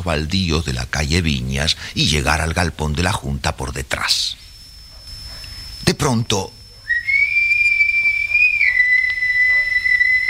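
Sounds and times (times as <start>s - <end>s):
speech: 0.0s - 4.4s, 5.9s - 6.6s
single long whistle near muddy vacant lots: 6.7s - 10.2s.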